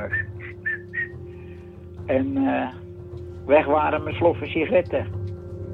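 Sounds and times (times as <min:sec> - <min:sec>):
person whistling a short jaunty tune: 0:00.0 - 0:01.3
speech: 0:02.1 - 0:02.8, 0:03.5 - 0:05.2.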